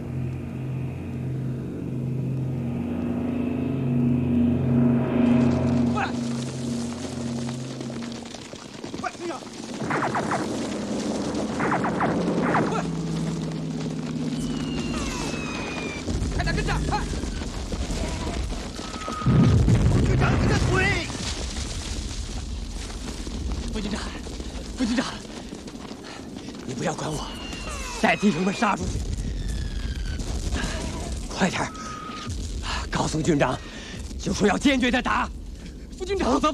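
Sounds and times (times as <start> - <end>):
enemy aircraft attacking troops with deep booms and blasts: 0.0 - 36.5
voices shouting: 14.2 - 19.3, 26.8 - 28.9, 29.6 - 32.3.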